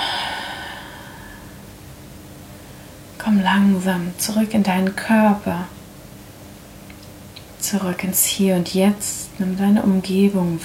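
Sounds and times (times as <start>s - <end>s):
deep breath in through the nose and out through the mouth: 0.0s - 1.6s
speech: 3.2s - 5.8s, 7.7s - 10.6s.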